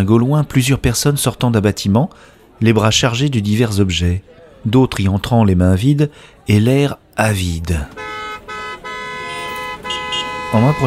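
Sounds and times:
speech: 0:00.0 - 0:08.1, 0:10.5 - 0:10.8
several car horns honking: 0:07.9 - 0:10.8.

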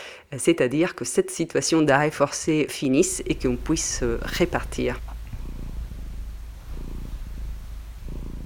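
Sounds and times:
speech: 0:00.3 - 0:05.1
cat purring: 0:02.9 - 0:08.4.

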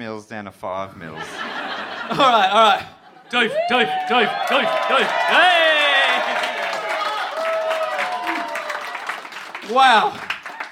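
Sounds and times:
speech: 0:00.0 - 0:05.8, 0:09.7 - 0:10.3
laughter: 0:01.1 - 0:07.2
excited voices calling out: 0:03.3 - 0:08.8
crowd applauding: 0:03.4 - 0:10.7.

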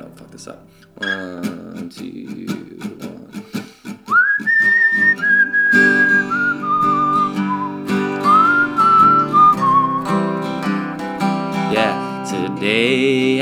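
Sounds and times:
steady strummed guitar accompaniment: 0:00.0 - 0:13.4
speech: 0:00.3 - 0:03.0
person whistling a slow sustained melody: 0:04.0 - 0:11.0.

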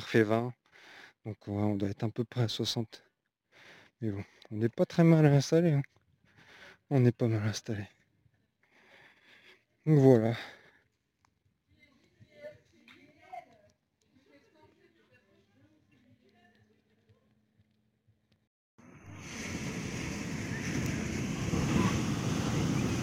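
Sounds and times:
speech: 0:00.1 - 0:00.6, 0:01.2 - 0:03.1, 0:04.0 - 0:06.0, 0:06.9 - 0:08.0, 0:09.8 - 0:10.6
ocean waves crashing onto a beach: 0:18.8 - 0:23.0.

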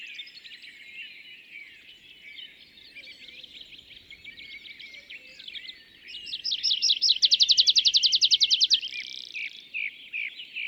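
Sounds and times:
tree pipit display song from an isolated tree by a meadow: 0:03.1 - 0:10.6.

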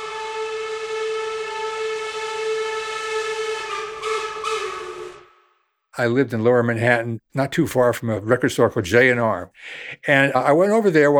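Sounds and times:
train whistle blowing in a long steady loud tone: 0:00.0 - 0:05.5
speech: 0:06.0 - 0:11.1.

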